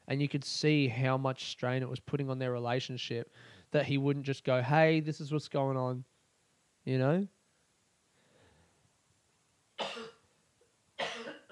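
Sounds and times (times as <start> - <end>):
speech: 0.1 - 6.1, 6.8 - 7.4
person coughing: 9.8 - 10.3, 11.0 - 11.5.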